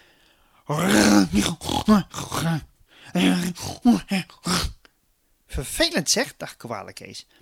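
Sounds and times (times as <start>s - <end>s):
speech: 0.7s - 2.7s, 6.0s - 7.4s
voice imitating loud exaggerated snoring: 0.7s - 4.8s.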